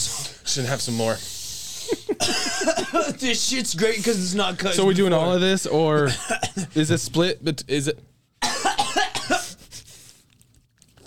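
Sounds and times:
room noise: 0.0 - 11.0
speech: 0.5 - 8.1
harsh coughs: 2.0 - 3.3, 6.1 - 6.8, 8.4 - 9.6.

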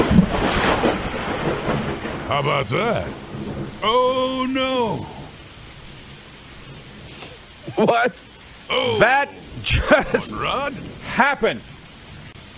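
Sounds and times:
loud thunder crack with heavy rumble: 0.0 - 3.9
steady dense rainfall hissing: 0.0 - 12.5
speech: 2.3 - 3.2, 3.8 - 5.2, 7.7 - 11.7.

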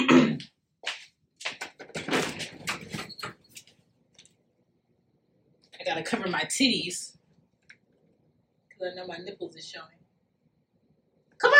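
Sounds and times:
clicks and knocks from door handling: 1.5 - 3.7
door opening with a sharp rattling scrape: 1.7 - 3.6
speech: 6.0 - 7.2, 8.8 - 10.0.

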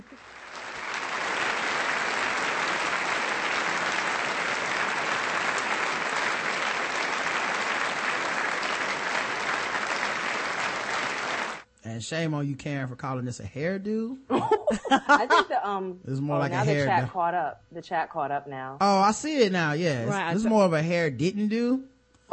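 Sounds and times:
sizable crowd applauding: 0.0 - 11.7
speech: 12.0 - 22.3
laughter: 14.3 - 17.1, 18.8 - 21.6.

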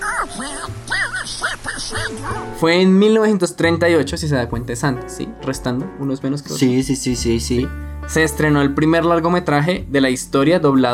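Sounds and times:
raspy cartoon duck voice quacking unintelligibly: 0.0 - 2.4
speech: 1.7 - 10.9.

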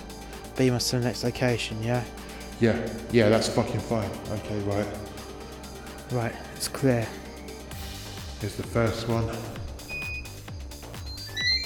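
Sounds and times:
speech: 0.6 - 5.1, 6.1 - 7.2, 8.4 - 9.6
electronic timer beeping while being set: 9.9 - 11.6.

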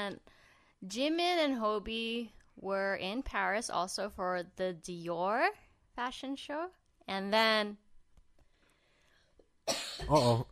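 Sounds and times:
speech: 0.0 - 7.8, 9.7 - 10.5
throaty human cough: 9.7 - 10.5.

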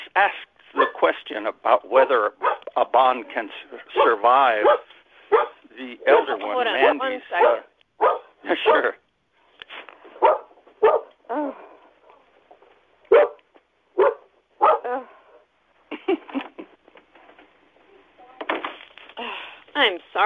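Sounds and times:
speech: 0.2 - 9.0
dog barking: 0.8 - 1.0, 2.0 - 2.7, 4.0 - 9.0, 10.2 - 11.2, 13.1 - 13.4, 14.0 - 15.0.

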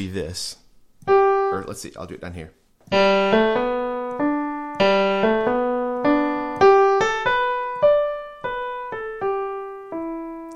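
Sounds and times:
speech: 0.0 - 3.8
solo piano playing a simple waltz melody: 2.9 - 10.5.

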